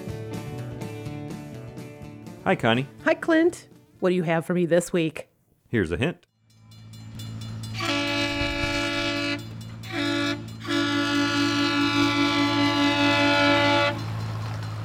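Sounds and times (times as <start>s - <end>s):
speech: 2.4s - 6.3s
low continuous train engine rumble: 6.5s - 14.8s
loud train horn blowing: 7.6s - 14.2s.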